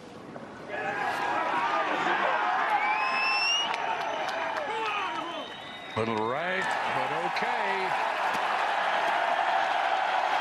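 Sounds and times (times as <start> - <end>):
large outdoor golf crowd cheering and shouting: 0.7 - 10.3
shrill whistles from a golf crowd: 2.7 - 4.4, 5.1 - 6.2.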